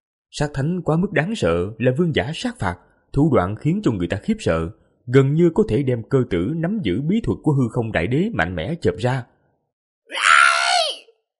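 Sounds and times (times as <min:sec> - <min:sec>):
speech: 0:00.3 - 0:09.3
long scream: 0:10.1 - 0:11.2.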